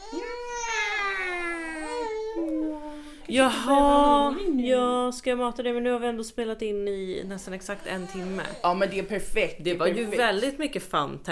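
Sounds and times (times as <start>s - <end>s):
infant crying: 0.0s - 3.1s
speech: 3.3s - 11.3s.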